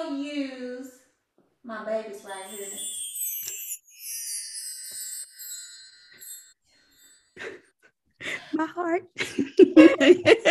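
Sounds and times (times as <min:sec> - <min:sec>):
speech: 0:00.0 - 0:00.7, 0:01.6 - 0:03.6, 0:08.6 - 0:10.5
wind chimes ringing: 0:02.2 - 0:07.8
laughter: 0:09.2 - 0:10.5.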